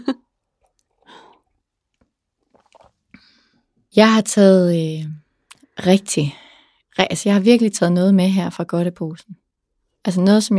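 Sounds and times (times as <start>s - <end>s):
soft slurps and swallows of someone sipping strong coffee: 0.5s - 3.3s
small wet mouth clicks: 2.4s - 3.0s
speech: 3.9s - 5.2s, 5.8s - 6.4s, 7.0s - 9.4s, 10.0s - 10.5s.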